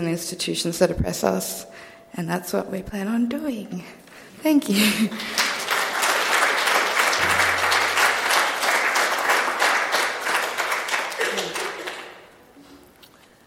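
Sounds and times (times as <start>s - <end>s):
speech: 0.0s - 5.4s
room full of people applauding: 5.1s - 12.4s.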